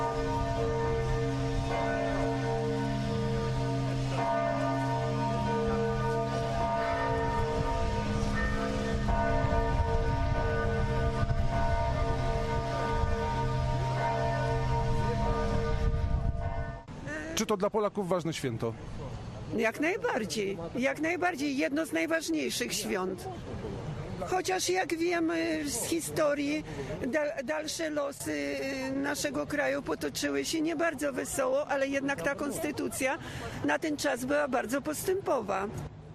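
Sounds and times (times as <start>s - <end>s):
big cathedral church bells ringing in a dense peal: 0.0s - 16.9s
speech: 17.4s - 23.6s, 24.2s - 35.9s.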